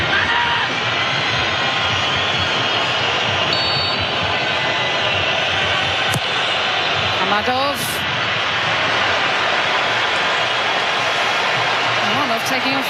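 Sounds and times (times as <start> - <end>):
large stadium crowd roaring at a football match: 0.0 - 12.8
faint whistle-like tone: 3.5 - 4.0
speech: 7.4 - 7.9, 12.5 - 12.8.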